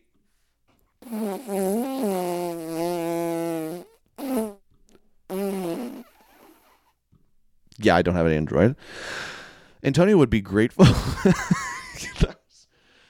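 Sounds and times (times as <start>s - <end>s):
fart sound effects from a phone app: 1.0s - 4.6s, 5.3s - 6.9s
speech: 7.8s - 12.2s.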